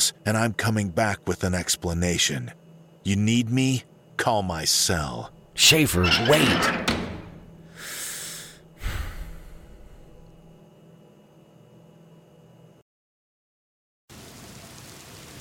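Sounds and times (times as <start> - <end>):
speech: 0.1 - 7.0
steady hissing rain: 14.1 - 15.3.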